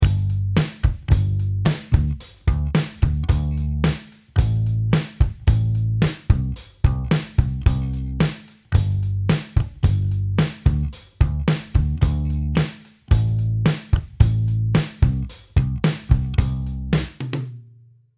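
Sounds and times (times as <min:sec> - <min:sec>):
bass line: 0:00.0 - 0:17.2.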